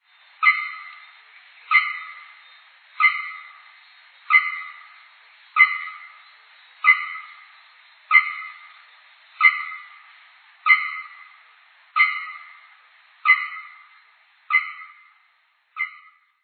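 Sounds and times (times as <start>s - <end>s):
northeastern araponga bellbird call: 0.4s - 1.1s, 1.7s - 5.0s, 5.6s - 8.8s, 9.4s - 10.0s, 10.7s - 11.4s, 12.0s - 12.7s, 13.3s - 15.2s, 15.8s - 16.4s.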